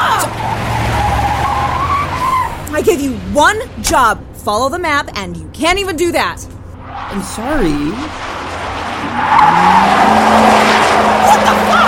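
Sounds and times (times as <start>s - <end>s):
ice cream truck tires squealing in a skid: 0.0s - 3.6s, 6.8s - 11.8s
speech: 2.9s - 6.5s, 7.1s - 8.4s, 9.0s - 10.6s, 11.2s - 11.8s.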